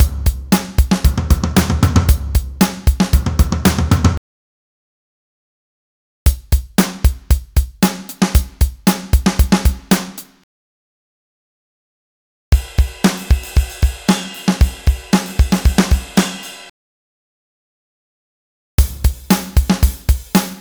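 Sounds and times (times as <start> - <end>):
pop rock drums: 0.0 - 4.2, 6.3 - 10.3, 12.6 - 16.7, 18.8 - 20.6.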